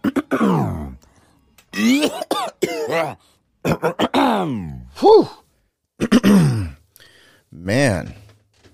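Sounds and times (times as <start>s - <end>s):
man clearing his throat from allergies: 0.0s - 0.9s, 1.8s - 5.4s, 6.0s - 6.8s
speech: 3.0s - 5.4s, 7.5s - 8.2s.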